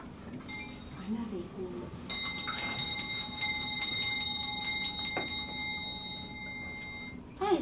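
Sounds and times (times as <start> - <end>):
horse sleigh bells jingling at night: 0.5 - 1.0, 2.1 - 7.2.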